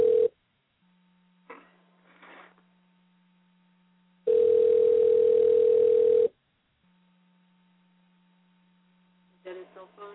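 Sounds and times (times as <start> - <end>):
telephone dial tone while a call is being dialed: 0.0 - 0.3, 4.3 - 6.3
faint low hum: 0.0 - 10.1.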